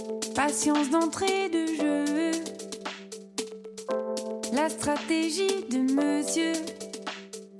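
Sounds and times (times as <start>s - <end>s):
French pop song intro on the radio: 0.2s - 2.5s
speech: 0.5s - 2.0s, 4.7s - 6.8s.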